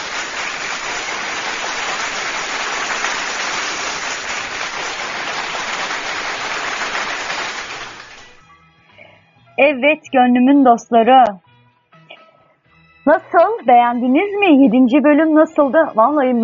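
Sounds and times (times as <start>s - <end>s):
large crowd applauding: 0.0s - 8.4s
speech: 9.6s - 11.4s, 13.0s - 16.4s.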